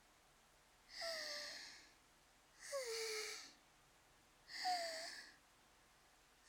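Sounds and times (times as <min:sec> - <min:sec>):
deep calming breaths with voiced sighs: 0:00.9 - 0:02.0, 0:02.6 - 0:03.6, 0:04.5 - 0:05.4.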